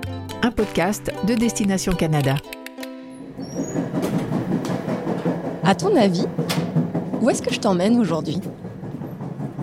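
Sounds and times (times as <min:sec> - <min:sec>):
speech: 0:00.4 - 0:02.6, 0:05.7 - 0:06.6, 0:07.2 - 0:08.6
train in Canada rumbling on rails: 0:03.2 - 0:09.6.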